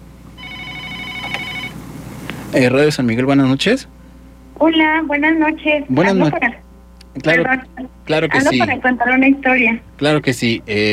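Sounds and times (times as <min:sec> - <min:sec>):
incoming telephone call ringing on a call-in line: 0:00.4 - 0:01.8
speech: 0:02.5 - 0:04.0, 0:04.6 - 0:06.6, 0:07.2 - 0:10.9.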